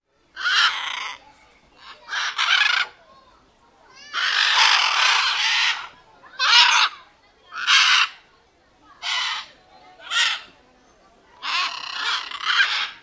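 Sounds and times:
macaws calling with coarse grating squawks: 0:00.4 - 0:01.2, 0:01.8 - 0:03.0, 0:04.0 - 0:08.2, 0:09.0 - 0:10.6, 0:11.4 - 0:13.0.

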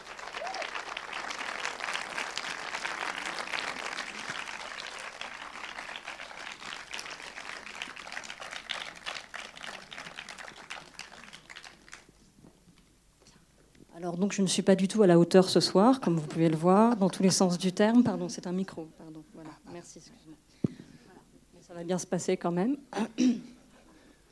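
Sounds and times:
large audience applause: 0:00.0 - 0:12.1
speech: 0:14.0 - 0:20.6, 0:21.7 - 0:23.5.

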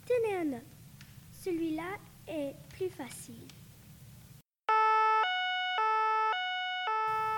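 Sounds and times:
speech: 0:00.2 - 0:00.8, 0:01.4 - 0:03.6
two-tone police siren: 0:04.7 - 0:07.3.

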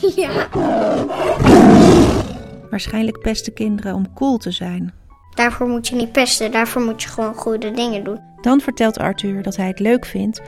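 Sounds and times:
speech: 0:00.0 - 0:01.5, 0:02.7 - 0:10.4
tiger roaring: 0:00.3 - 0:02.7.

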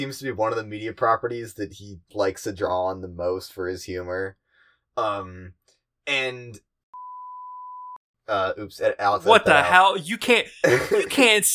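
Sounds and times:
speech: 0:00.0 - 0:04.4, 0:05.0 - 0:06.7, 0:08.3 - 0:11.5
steady single-pitch censor bleep: 0:07.0 - 0:08.0.

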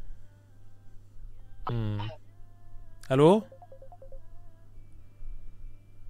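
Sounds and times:
speech: 0:01.7 - 0:02.2, 0:03.1 - 0:03.5
steady phone tone: 0:03.4 - 0:04.2
electronic phone dialing beeps at alternating pitches: 0:03.5 - 0:04.2.

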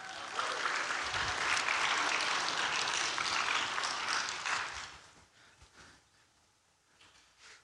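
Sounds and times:
crowd applauding: 0:00.0 - 0:05.1.

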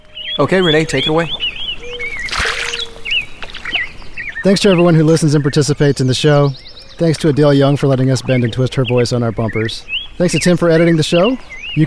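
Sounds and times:
birds chirping and whistling at a lake: 0:00.0 - 0:11.8
speech: 0:00.4 - 0:01.6, 0:04.4 - 0:11.8
lake water lapping: 0:00.6 - 0:11.8
water splash: 0:02.2 - 0:03.9.

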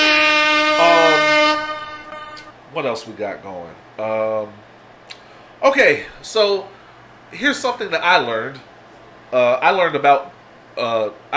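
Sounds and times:
air horn sound effect: 0:00.0 - 0:02.7
speech: 0:02.8 - 0:04.7, 0:05.6 - 0:08.7, 0:09.3 - 0:11.3.

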